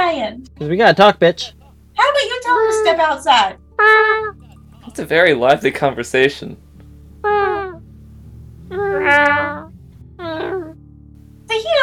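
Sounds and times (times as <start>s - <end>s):
speech: 0.2s - 6.6s
cat meowing: 3.8s - 4.4s, 8.7s - 10.8s.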